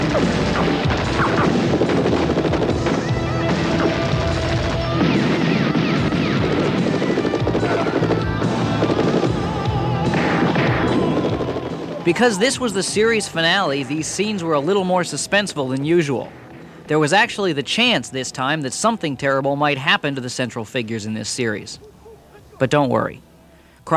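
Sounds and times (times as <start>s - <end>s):
gunfire in a TV action scene: 0.0s - 14.3s
action-scene soundtrack music: 0.0s - 14.9s
speech: 12.1s - 21.9s, 22.6s - 23.9s.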